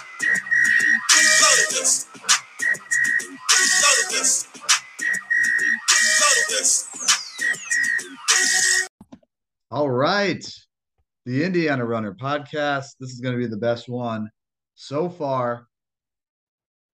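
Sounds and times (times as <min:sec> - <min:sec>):
shrill whistle being blown: 0:00.0 - 0:08.9
speech: 0:10.2 - 0:10.6, 0:11.2 - 0:15.7.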